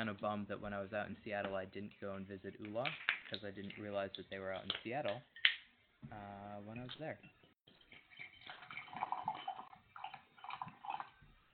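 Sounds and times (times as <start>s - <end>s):
speech: 0.0s - 5.4s, 6.0s - 7.4s
whiskey pouring into a glass: 7.7s - 11.3s.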